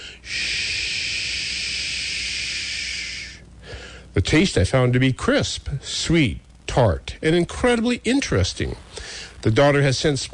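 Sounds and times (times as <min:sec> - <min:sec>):
carbonation hissing from an opened kombucha bottle: 0:00.0 - 0:03.9
speech: 0:04.2 - 0:10.3.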